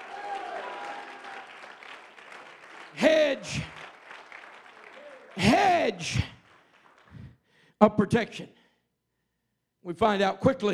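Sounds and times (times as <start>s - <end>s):
large crowd audience clapping: 0.0s - 7.4s
speech: 3.0s - 3.8s, 5.6s - 6.3s, 7.8s - 8.6s, 9.8s - 10.7s.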